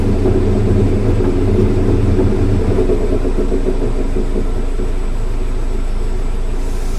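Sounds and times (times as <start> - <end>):
S2000 rear noise with trunk stands kicked in neutral: 0.0 - 6.9.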